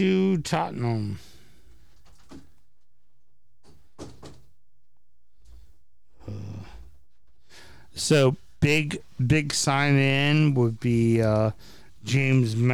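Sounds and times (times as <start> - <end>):
speech: 0.0 - 1.3, 8.0 - 12.7
door being opened: 3.6 - 4.6.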